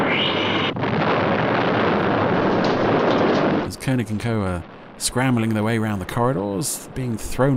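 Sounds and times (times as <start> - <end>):
big explosion sound effect: 0.0 - 3.9
speech: 3.9 - 7.5.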